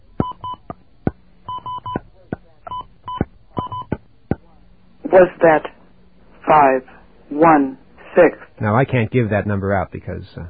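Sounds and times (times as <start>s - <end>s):
touch-tone DTMF dialing of a telephone number: 0.2s - 0.7s, 1.5s - 2.0s, 2.7s - 4.0s
speech: 5.2s - 5.7s, 6.5s - 10.4s.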